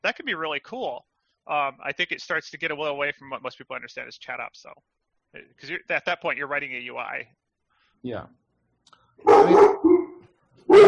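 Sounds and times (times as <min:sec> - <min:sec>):
speech: 0:00.0 - 0:07.4, 0:08.0 - 0:09.8
puppy barking: 0:09.2 - 0:10.8.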